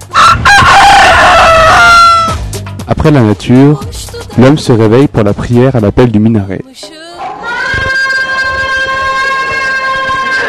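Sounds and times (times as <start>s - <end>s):
rooster crowing: 0.1s - 2.4s, 7.4s - 10.4s
speech: 3.0s - 7.0s.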